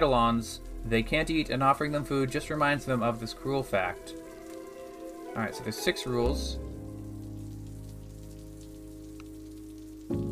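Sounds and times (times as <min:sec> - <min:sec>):
speech: 0:00.0 - 0:04.2, 0:05.4 - 0:06.7
low humming drone: 0:00.0 - 0:07.2
soft rain pattering: 0:00.0 - 0:10.2.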